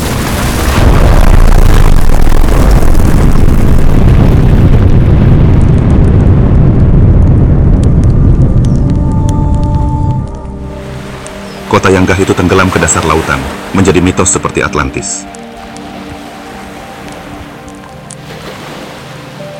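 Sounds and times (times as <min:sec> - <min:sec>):
huge explosion destroying a city under artillery fire: 0:00.0 - 0:10.4
speech: 0:11.9 - 0:15.4.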